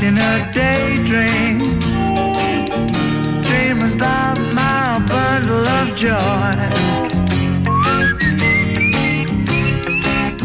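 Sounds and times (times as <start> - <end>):
full pop band playing: 0.0 - 10.4
clear bright whistled melody in a pop song: 7.6 - 10.4.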